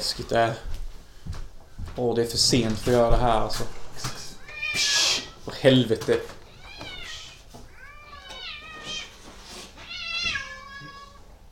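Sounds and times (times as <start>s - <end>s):
speech: 0.0s - 1.4s, 2.0s - 6.4s
several cats meowing outside: 4.2s - 5.6s, 6.3s - 11.5s.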